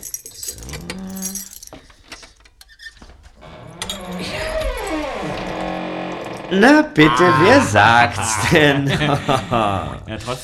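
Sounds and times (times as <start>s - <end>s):
lock being picked with a lockpick: 0.0s - 2.9s
speech: 6.5s - 10.4s
laughter: 7.0s - 10.4s.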